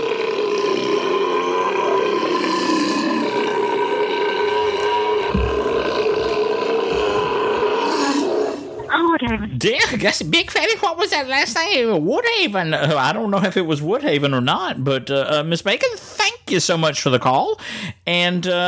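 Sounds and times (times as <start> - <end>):
long loud throaty belch: 0.0 - 8.9
speech: 9.2 - 18.6.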